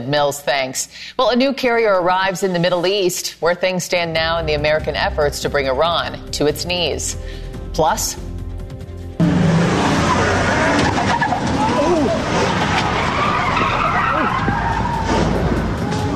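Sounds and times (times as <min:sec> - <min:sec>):
speech: 0:00.0 - 0:08.3
tires skidding as a truck rams a car: 0:09.2 - 0:16.1.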